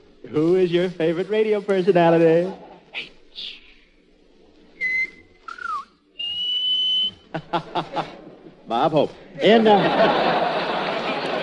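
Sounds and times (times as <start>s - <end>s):
speech: 0.2s - 3.6s, 8.7s - 10.4s
person whistling notes in answer to a question: 4.7s - 7.3s
laughter: 7.2s - 8.7s, 9.4s - 11.4s.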